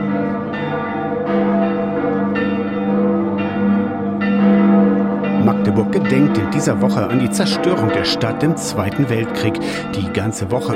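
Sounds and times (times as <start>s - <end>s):
many church bells ringing together in a continuous peal: 0.0s - 10.7s
speech: 5.9s - 10.7s.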